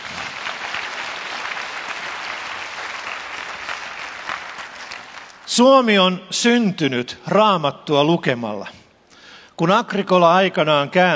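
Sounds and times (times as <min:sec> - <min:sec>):
audience applause: 0:00.0 - 0:05.6
speech: 0:05.5 - 0:08.8, 0:09.6 - 0:11.1.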